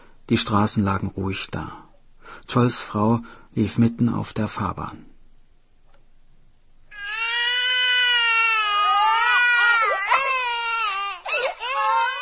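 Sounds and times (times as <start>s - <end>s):
speech: 0.3s - 5.1s
baby wailing loudly: 6.9s - 12.1s.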